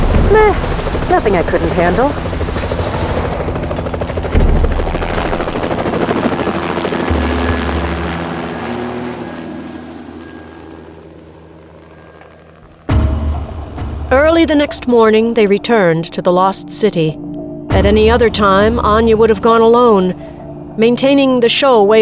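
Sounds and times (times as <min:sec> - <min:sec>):
helicopter rotor thumping in a clearing: 0:00.0 - 0:15.0
speech: 0:00.3 - 0:02.3, 0:14.3 - 0:21.9.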